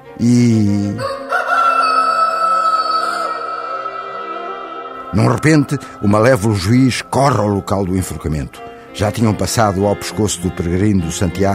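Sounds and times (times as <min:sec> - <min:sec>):
speech: 0:00.2 - 0:01.2, 0:05.2 - 0:11.5
rooster crowing: 0:01.0 - 0:05.0.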